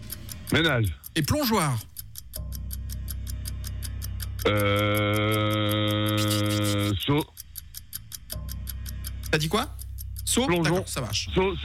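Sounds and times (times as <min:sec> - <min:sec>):
game timer ticking during a word-association quiz: 0:00.0 - 0:11.6
speech: 0:00.5 - 0:01.9, 0:04.4 - 0:07.4, 0:09.3 - 0:11.6.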